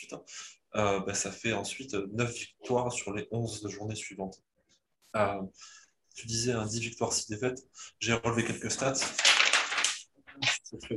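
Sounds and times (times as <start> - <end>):
speech: 0.0 - 4.5, 5.1 - 9.3, 10.4 - 10.9
crinkly paper rustling: 8.6 - 10.7.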